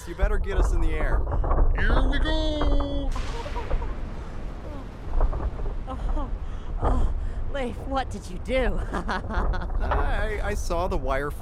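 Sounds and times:
speech: 0.0s - 3.7s, 7.6s - 11.4s
building collapsing after explosions with deep rumble: 0.0s - 11.4s
crackling debris from collapsing building: 0.0s - 11.4s
laughter: 3.1s - 4.1s, 8.8s - 10.4s.

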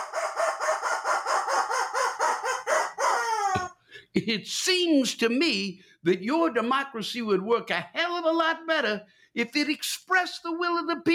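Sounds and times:
rubber chicken toy squawking: 0.0s - 3.7s
speech: 4.1s - 11.1s.

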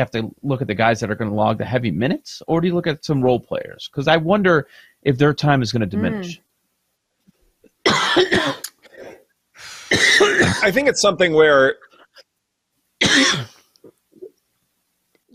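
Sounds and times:
speech: 0.0s - 6.5s, 7.9s - 8.6s, 9.9s - 11.9s, 13.2s - 13.5s
person coughing: 7.9s - 9.2s, 9.9s - 10.8s, 13.0s - 13.6s.

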